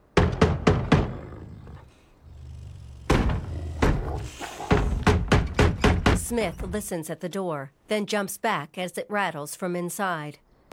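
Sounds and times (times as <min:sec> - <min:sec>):
cane knob pounding on a wooden wall around a small yard: 0:00.0 - 0:01.2, 0:04.7 - 0:06.3
speech: 0:06.3 - 0:10.7.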